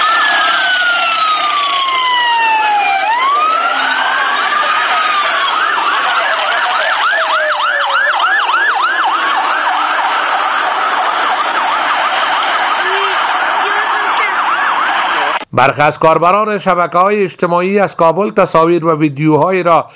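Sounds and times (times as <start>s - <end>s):
several ambulance sirens wailing: 0.0s - 15.5s
dense background of street noise: 0.0s - 19.9s
speech: 15.6s - 19.9s.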